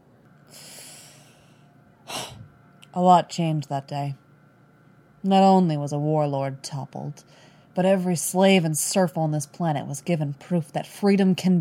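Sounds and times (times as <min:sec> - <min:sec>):
deep breathing: 0:00.5 - 0:02.5
speech: 0:03.0 - 0:04.2, 0:05.2 - 0:11.5.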